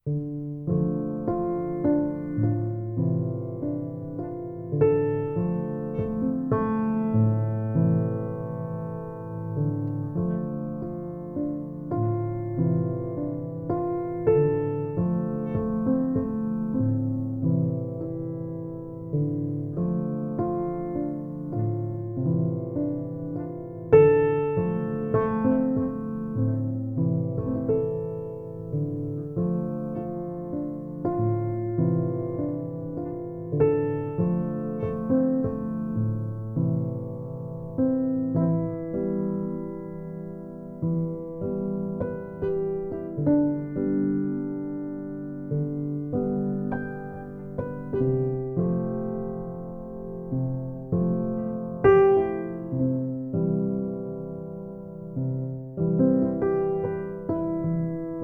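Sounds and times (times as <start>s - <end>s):
piano piece: 0.0s - 58.2s.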